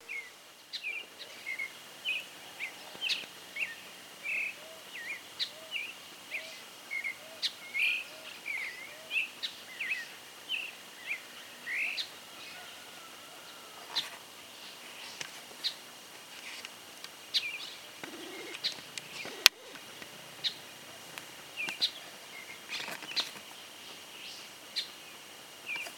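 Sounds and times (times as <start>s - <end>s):
creamy-bellied thrush calling: 0.0s - 14.8s, 17.2s - 25.8s.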